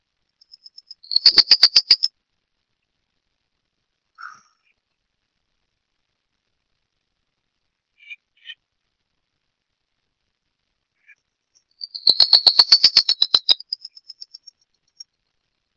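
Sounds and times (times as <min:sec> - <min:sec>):
Phleochryptes melanops calling: 0:01.0 - 0:02.1, 0:04.2 - 0:04.7, 0:11.8 - 0:14.4.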